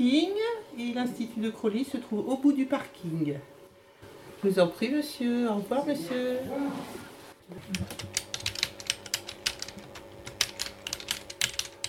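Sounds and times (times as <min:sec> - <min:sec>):
speech: 0:00.0 - 0:03.6, 0:04.4 - 0:08.1
typing on a computer keyboard: 0:07.8 - 0:11.8.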